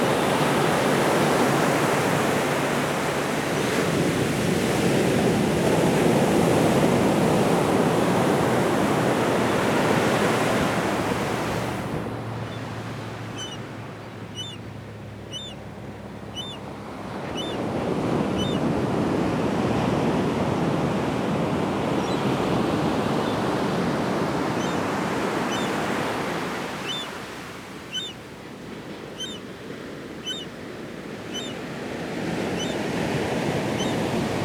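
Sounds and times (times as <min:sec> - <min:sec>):
surf rolling in on a beach: 0:00.0 - 0:34.4
faint high bird chirps: 0:13.3 - 0:15.6, 0:16.3 - 0:16.6, 0:17.2 - 0:17.6, 0:18.4 - 0:18.6, 0:24.6 - 0:24.8, 0:25.5 - 0:25.8, 0:26.8 - 0:27.2, 0:27.9 - 0:28.2, 0:29.2 - 0:29.5, 0:30.2 - 0:30.5, 0:31.3 - 0:31.6, 0:32.6 - 0:32.8.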